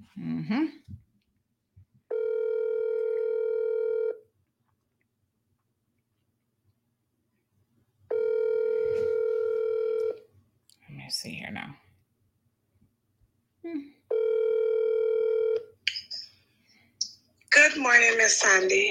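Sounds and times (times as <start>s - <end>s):
speech: 0.2s - 1.1s, 18.3s - 18.8s
telephone tone from a phone call being placed: 2.1s - 4.2s, 8.1s - 10.2s, 14.1s - 15.7s.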